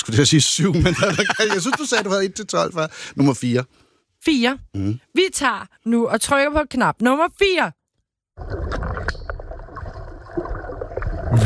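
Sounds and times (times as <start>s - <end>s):
speech: 0.0s - 7.8s, 8.4s - 8.8s
laughter: 0.6s - 2.4s
water splashing and gurgling: 8.4s - 11.4s.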